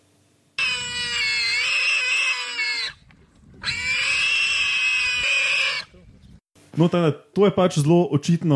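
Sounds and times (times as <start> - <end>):
warthog squealing in distress while attacked by a leopard: 0.6 - 3.0, 3.6 - 6.0
speech: 6.8 - 8.5.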